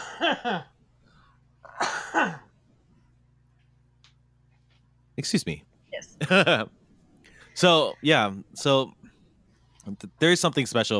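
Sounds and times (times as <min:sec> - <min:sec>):
person coughing: 0:00.0 - 0:00.7, 0:01.7 - 0:02.5
speech: 0:00.2 - 0:00.7, 0:01.8 - 0:02.4, 0:05.2 - 0:06.8, 0:07.6 - 0:09.0, 0:09.8 - 0:10.9.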